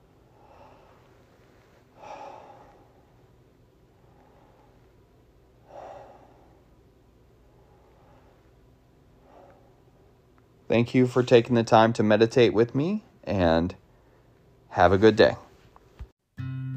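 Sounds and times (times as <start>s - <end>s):
steady low hiss: 0.0s - 16.1s
slow deep breaths closing a guided meditation: 0.2s - 10.3s, 13.8s - 14.6s
speech: 10.7s - 13.8s, 14.7s - 15.4s.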